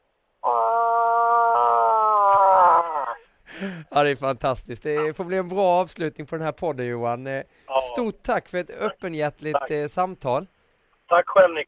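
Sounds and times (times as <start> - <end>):
person imitating a moose call: 0.4 - 3.4
speech: 3.8 - 11.6.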